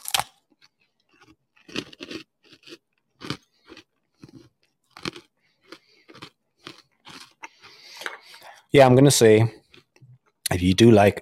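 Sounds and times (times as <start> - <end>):
crunching freeze-dried mint chocolate chip ice cream: 0.0 - 8.3, 9.6 - 10.5
speech: 8.7 - 9.6, 10.6 - 11.2.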